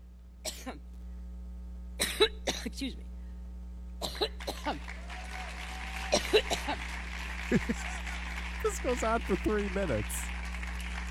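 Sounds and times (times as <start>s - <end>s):
steady low electrical hum: 0.0s - 11.0s
woman coughing during a speech: 0.5s - 0.8s, 2.0s - 3.0s, 4.0s - 4.8s, 6.1s - 6.8s
speech: 0.7s - 0.9s, 2.6s - 3.1s, 4.2s - 5.0s, 6.2s - 8.0s, 8.6s - 10.3s
laughter: 6.1s - 10.1s.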